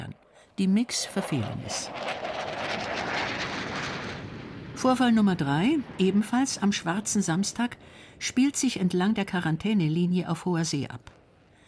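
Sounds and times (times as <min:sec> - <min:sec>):
speech: 0:00.6 - 0:02.4, 0:04.8 - 0:11.2
jet aircraft engine roaring overhead: 0:00.8 - 0:08.2.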